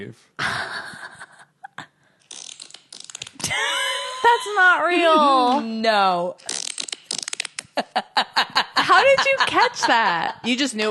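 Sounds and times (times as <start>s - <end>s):
speech: 0.0s - 0.8s, 4.2s - 6.6s, 7.8s - 10.8s
fart recording played back: 2.3s - 3.5s, 6.4s - 7.8s
laughter: 3.4s - 5.7s, 7.8s - 10.5s.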